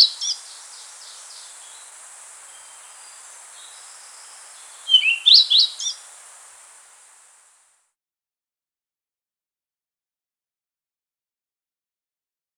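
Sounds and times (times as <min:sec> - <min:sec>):
rufous-tailed flycatcher notes and whistles: 0:00.0 - 0:06.4.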